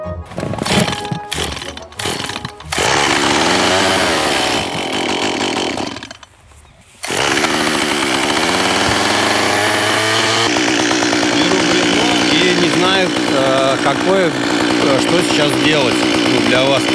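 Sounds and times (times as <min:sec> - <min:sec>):
woodcarver's chainsaw sputtering through pull-starts: 0:00.3 - 0:16.9
speech: 0:14.0 - 0:16.9.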